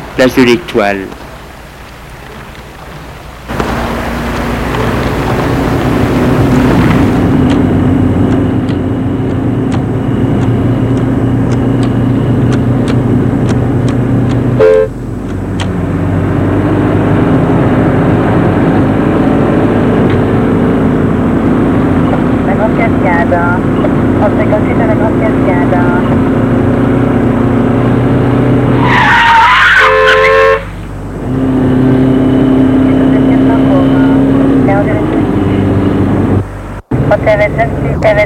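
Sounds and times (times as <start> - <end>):
loud steady rumble of city traffic: 0.0 - 38.2
speech: 0.2 - 1.2
car horn blaring: 14.6 - 15.0, 29.3 - 30.8.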